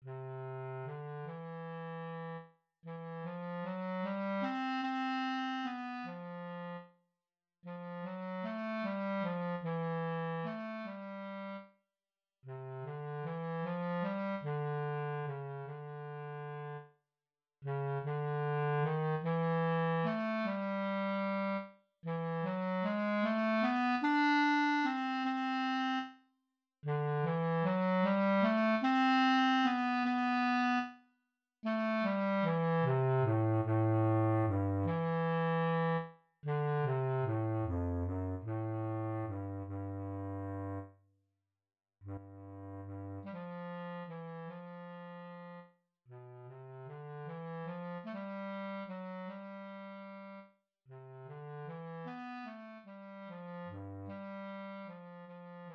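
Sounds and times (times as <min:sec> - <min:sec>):
bass clarinet etude: 0:00.0 - 0:06.9, 0:07.7 - 0:11.7, 0:12.5 - 0:16.8, 0:17.6 - 0:26.1, 0:26.8 - 0:30.9, 0:31.7 - 0:40.9, 0:42.0 - 0:55.7.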